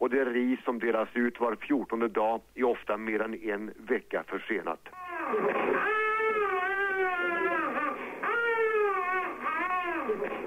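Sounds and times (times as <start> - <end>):
speech: 0.0 - 5.9
malnourished infant crying in an unheated hospital: 4.9 - 10.4.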